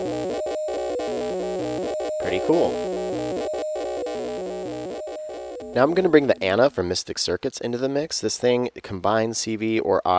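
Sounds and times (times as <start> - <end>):
buzzy modular synthesizer drone: 0.0 - 6.8
speech: 2.3 - 2.8, 5.8 - 10.1.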